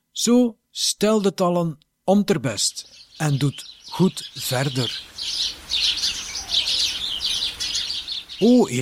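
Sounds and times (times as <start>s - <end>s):
speech: 0.2s - 6.1s, 8.4s - 8.8s
small birds whistling and chirping: 2.1s - 8.8s.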